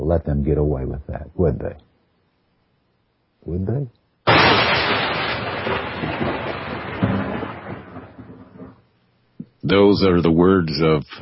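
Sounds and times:
speech: 0.1s - 1.9s, 3.4s - 4.7s, 9.6s - 11.1s
thunder and lightning strike sound effect: 4.3s - 8.8s.

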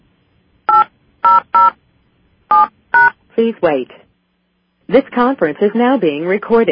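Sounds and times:
telephone keypad tones entering a PIN: 0.7s - 1.8s
speech: 3.4s - 4.0s, 4.9s - 6.7s.

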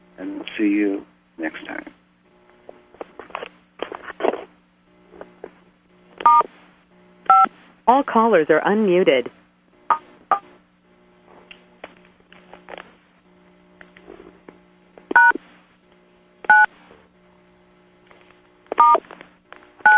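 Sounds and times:
faint steady hum: 0.0s - 19.9s
speech: 0.2s - 2.0s, 7.9s - 9.4s
telephone keypad DTMF tones: 15.2s - 15.4s, 18.8s - 19.0s.

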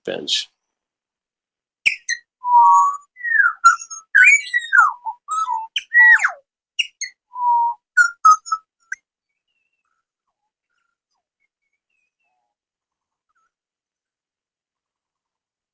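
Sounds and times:
speech: 0.0s - 0.5s
small birds singing on a picnic table: 1.8s - 13.6s.

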